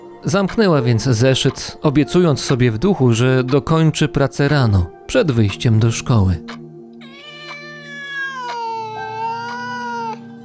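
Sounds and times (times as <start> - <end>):
speech: 0.2 - 6.6
cats yowling and meowing: 7.0 - 10.2.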